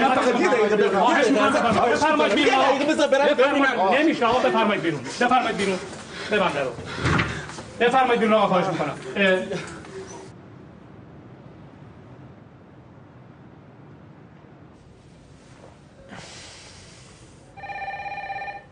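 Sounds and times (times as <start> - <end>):
wind-like noise: 0.0 - 17.6
speech: 0.1 - 7.2, 7.8 - 9.8
telephone with bright electronic ring: 17.6 - 18.7.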